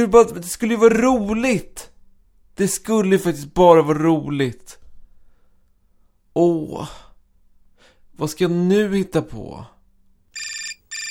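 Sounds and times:
speech: 0.0s - 1.9s, 2.6s - 4.8s, 6.4s - 7.0s, 8.2s - 9.7s
telephone ringing in bright electronic bursts: 10.4s - 11.0s.

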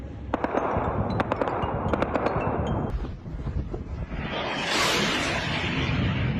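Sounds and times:
steady low rumble: 0.0s - 6.3s
rapid irregular bursts of gunfire: 0.3s - 2.7s.

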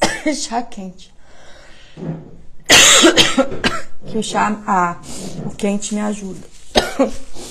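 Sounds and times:
loud fit of harsh coughing: 0.0s - 0.3s, 2.0s - 4.1s, 6.8s - 7.1s
speech: 0.2s - 1.2s, 2.0s - 2.4s, 3.0s - 7.4s.

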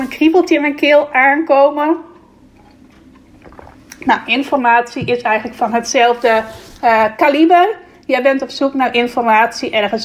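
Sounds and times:
speech: 0.0s - 2.1s, 4.0s - 10.0s
person taking a quick sip of water and swallowing: 2.2s - 4.1s.

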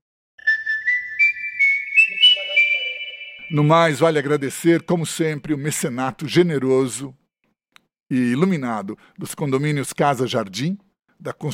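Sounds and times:
person whistling a short clear melody: 0.4s - 4.6s
speech: 3.5s - 7.2s, 8.1s - 11.5s.

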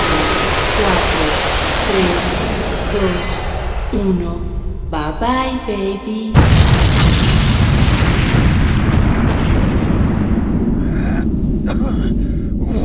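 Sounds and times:
roaring blast of a missile launching: 0.0s - 4.0s, 6.4s - 11.7s
speech: 1.9s - 2.3s, 2.9s - 6.8s.

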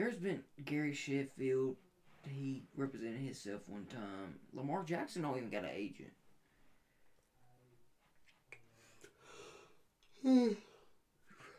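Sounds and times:
speech: 0.0s - 6.2s, 10.2s - 10.7s
person yawning: 10.1s - 11.5s.

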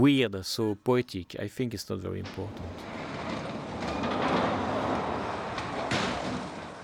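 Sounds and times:
speech: 0.0s - 3.0s
ghost train ride wheels rumbling on rails on a set in Germany: 2.6s - 6.8s.

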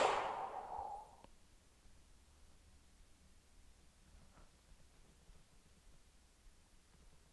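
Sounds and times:
slow airy exhale during a guided breathing exercise: 0.0s - 1.1s.

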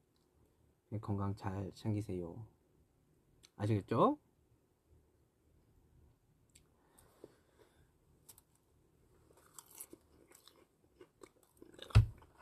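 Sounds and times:
speech: 0.9s - 2.6s, 3.6s - 4.2s
crunchy chewing of raw vegetables: 9.3s - 12.3s.

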